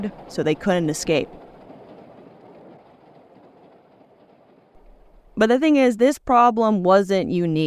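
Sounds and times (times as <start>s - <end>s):
speech: 0.0s - 1.4s, 5.4s - 7.6s
train wheels clattering rhythmically: 0.0s - 5.6s
train rolling along the rails with a close rumble: 0.0s - 5.8s.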